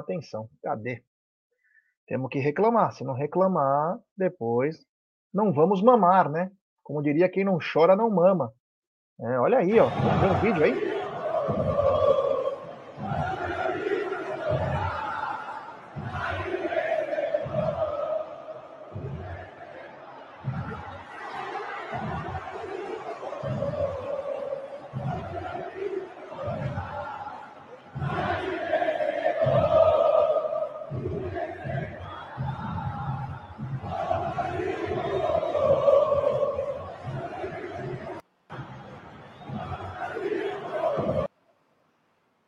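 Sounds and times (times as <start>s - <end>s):
speech: 0.0s - 1.1s, 2.1s - 8.6s, 9.2s - 10.9s, 11.5s - 12.0s
huge stadium crowd of football supporters chanting in unison: 9.6s - 41.3s.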